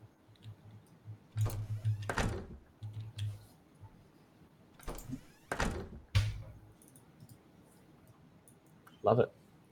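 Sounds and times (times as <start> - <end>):
door shutting: 1.4 - 2.6, 4.8 - 6.6
speech: 9.0 - 9.4.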